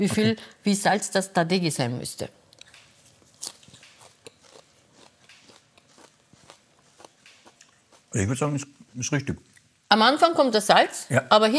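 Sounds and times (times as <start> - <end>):
speech: 0.0 - 2.4, 8.1 - 11.5
wet crunchy chewing of salted napa cabbage: 2.6 - 8.2
crisp bite into salted drained napa cabbage: 3.4 - 8.1.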